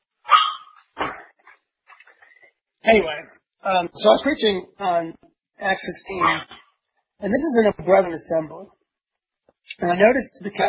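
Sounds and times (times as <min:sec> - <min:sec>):
dog yelping: 0:00.3 - 0:00.8, 0:06.2 - 0:06.6
dog barking: 0:00.3 - 0:01.2
speech: 0:02.9 - 0:06.6, 0:07.2 - 0:08.8, 0:09.7 - 0:10.6.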